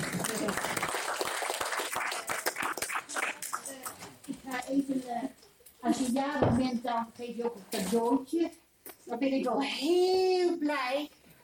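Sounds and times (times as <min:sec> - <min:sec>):
audience applause: 0:00.0 - 0:04.0
speech: 0:06.1 - 0:11.2.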